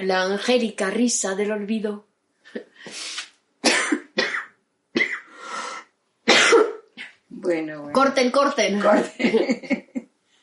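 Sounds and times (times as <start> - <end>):
speech: 0.0 - 3.2, 7.5 - 9.9
person coughing harshly: 3.6 - 5.4, 6.3 - 6.9
raspy breaths: 5.3 - 6.0
laughter: 8.9 - 10.0.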